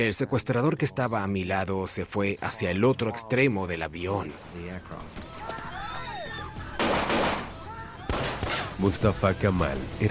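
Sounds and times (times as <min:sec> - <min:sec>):
speech: 0:00.0 - 0:05.2, 0:08.8 - 0:10.0
tense shouting voices: 0:05.2 - 0:08.7
loud bursts of gunfire: 0:06.8 - 0:07.5.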